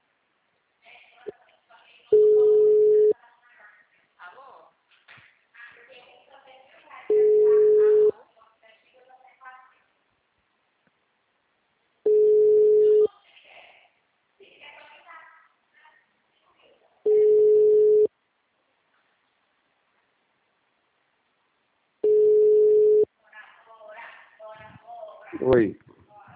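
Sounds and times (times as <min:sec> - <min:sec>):
telephone ringing with an incoming call: 0:02.1 - 0:03.1, 0:07.1 - 0:08.1, 0:12.1 - 0:13.1, 0:17.1 - 0:18.1, 0:22.0 - 0:23.1
speech: 0:25.4 - 0:25.8.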